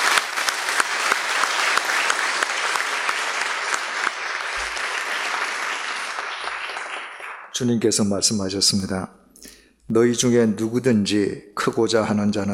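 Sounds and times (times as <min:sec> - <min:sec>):
large audience clapping: 0:00.0 - 0:07.7
speech: 0:07.6 - 0:09.2, 0:09.9 - 0:12.5.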